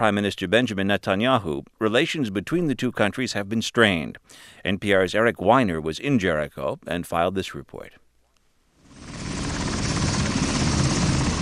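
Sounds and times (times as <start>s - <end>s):
speech: 0.0s - 8.0s
helicopter landing: 8.8s - 11.4s.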